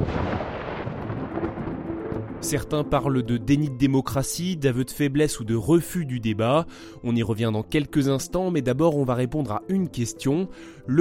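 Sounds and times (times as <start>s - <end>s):
loud thunderclap with a heavy rumble: 0.0s - 3.3s
speech: 2.4s - 10.9s.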